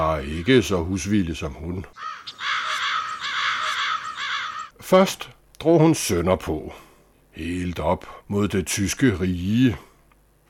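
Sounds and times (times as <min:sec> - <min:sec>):
speech: 0:00.2 - 0:02.6, 0:04.9 - 0:06.8, 0:07.4 - 0:09.9
flock of black crows cawing flying over: 0:02.0 - 0:04.8.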